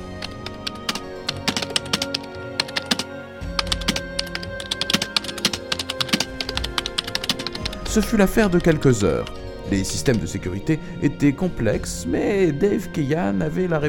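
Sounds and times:
fast typing on a computer keyboard: 0.0s - 9.3s
speech: 7.9s - 13.8s.

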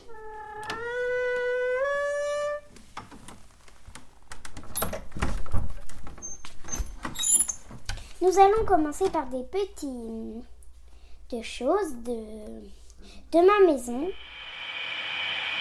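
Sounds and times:
door swinging with a rising squeaky creak: 0.0s - 3.4s, 4.5s - 7.8s
speech: 8.2s - 10.5s, 11.3s - 14.3s.

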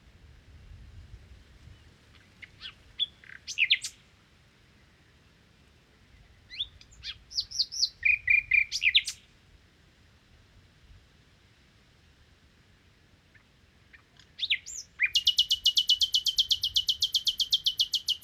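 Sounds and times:
low background hiss: 0.0s - 18.2s
common nightingale song in Crau, Bouches-du-Rhône, France: 1.6s - 9.4s, 13.2s - 18.2s.

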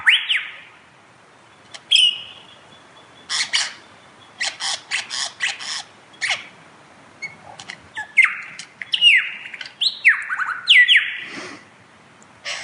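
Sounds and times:
lyrebird song in the Cathedral Ranges Victoria: 0.0s - 11.4s, 12.4s - 12.6s.

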